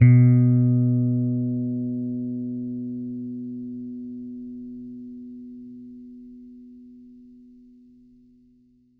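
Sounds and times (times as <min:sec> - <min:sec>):
finger-played bass note B2: 0:00.0 - 0:03.8.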